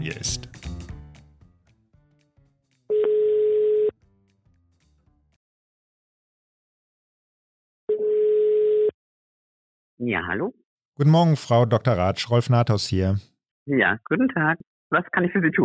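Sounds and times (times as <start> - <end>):
telephone ringing tone as a call is placed: 2.9 - 4.0, 7.9 - 9.0
speech: 10.0 - 15.6.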